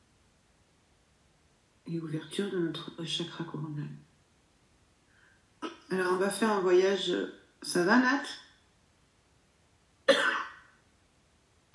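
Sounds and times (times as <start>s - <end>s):
speech: 1.9s - 4.1s, 5.9s - 8.4s
sharp cough: 10.1s - 10.8s.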